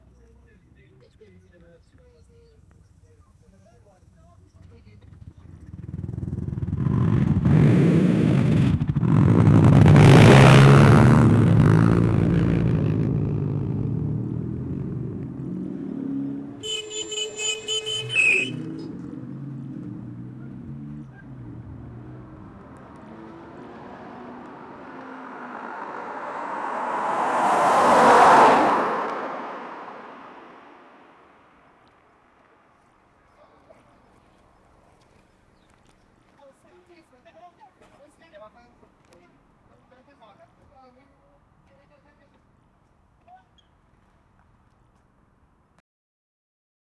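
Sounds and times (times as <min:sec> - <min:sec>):
Mercedes AMG V8 engine: 0:04.7 - 0:32.0.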